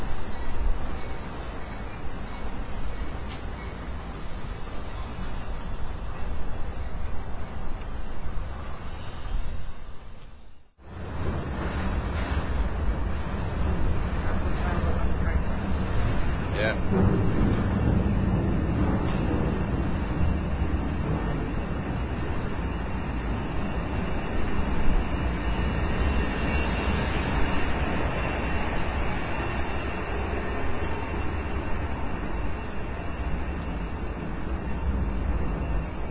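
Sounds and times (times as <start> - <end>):
freight train rumbling past: 0.0 - 36.1.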